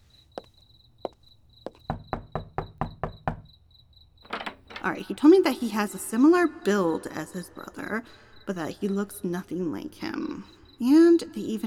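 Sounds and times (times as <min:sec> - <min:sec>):
crickets chirping outdoors: 0:00.0 - 0:11.6
knocking on a front door: 0:01.7 - 0:03.6, 0:04.3 - 0:04.9
speech: 0:04.8 - 0:11.6.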